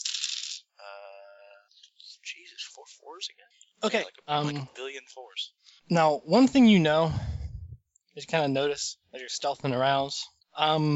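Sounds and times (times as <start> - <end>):
handful of dice clattering and rattling on a table: 0.0 - 0.6
speech: 2.3 - 7.3, 8.2 - 10.9.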